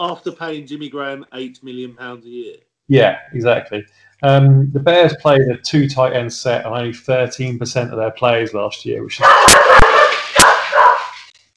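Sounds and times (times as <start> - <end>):
speech: 0.0 - 10.2
female dog barking: 9.2 - 11.2.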